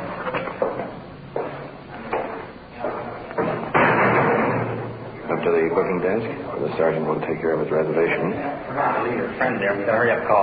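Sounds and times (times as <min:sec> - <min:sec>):
clunking thuds: 0:00.3 - 0:05.0
heavy iron door slamming shut: 0:03.4 - 0:05.1
speech: 0:05.4 - 0:10.4.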